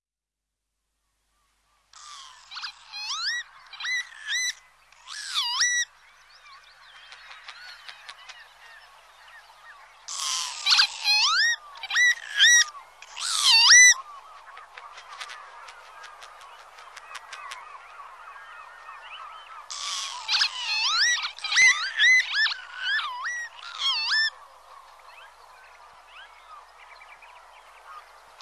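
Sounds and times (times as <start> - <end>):
birds: 1.3 - 28.4
northern lapwing calling: 2.0 - 5.9, 10.1 - 24.4.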